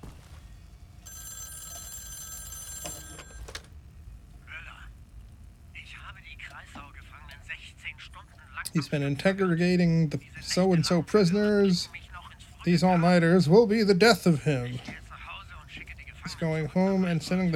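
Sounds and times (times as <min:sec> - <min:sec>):
telephone bell ringing: 0:01.0 - 0:03.7
low rumble: 0:03.7 - 0:17.5
speech: 0:08.8 - 0:12.0, 0:12.6 - 0:15.0, 0:16.4 - 0:17.5.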